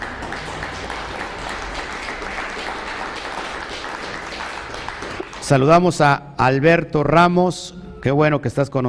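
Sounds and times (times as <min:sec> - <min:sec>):
crowd applauding: 0:00.0 - 0:06.0
speech: 0:05.5 - 0:08.8.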